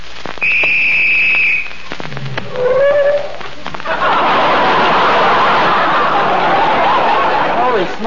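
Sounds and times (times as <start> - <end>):
police whistle blown by mistake: 0.4 - 1.7
laughter: 3.8 - 8.0.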